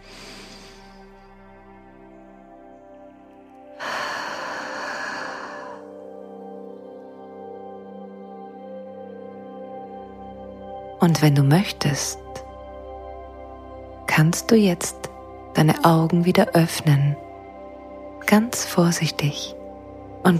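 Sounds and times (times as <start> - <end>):
deep long deliberate breath during a guided relaxation exercise: 0.0 - 1.3, 3.8 - 6.0
sustained humming musical tones: 0.0 - 20.3
speech: 11.0 - 12.2, 14.2 - 15.0, 15.6 - 17.2, 18.3 - 19.6.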